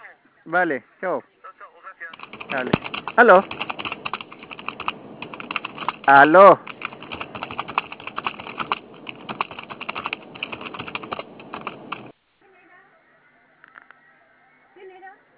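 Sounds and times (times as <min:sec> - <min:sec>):
speech: 0:00.4 - 0:01.3, 0:02.5 - 0:03.7, 0:06.1 - 0:06.7
keyboard typing: 0:02.1 - 0:12.1.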